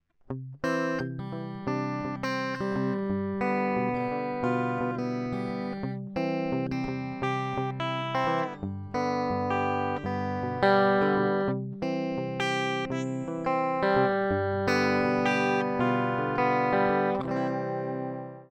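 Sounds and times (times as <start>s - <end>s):
Harley Benton TE-90FLT electric guitar clean picking on bridge pickup: 0.3s - 18.5s.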